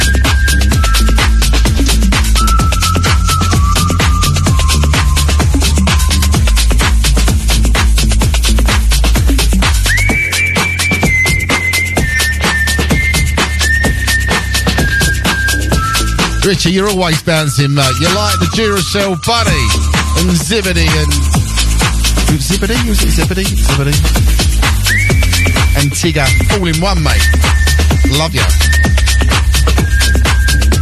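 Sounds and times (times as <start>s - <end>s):
shrill whistle blowing long held notes: 0.0s - 5.4s, 9.8s - 16.5s, 17.3s - 20.2s, 24.8s - 30.7s
loud busy rhythmic music with a steady thumping beat: 0.0s - 30.7s
speech: 16.6s - 21.4s, 22.3s - 24.4s, 25.8s - 28.8s.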